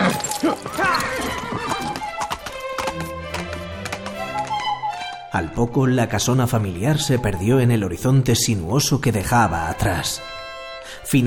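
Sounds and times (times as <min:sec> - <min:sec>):
horse whinnying: 0:00.0 - 0:02.4
horse hooves clip-clopping as a rider spurs the mount: 0:00.0 - 0:05.2
speech: 0:05.4 - 0:10.4, 0:11.1 - 0:11.2.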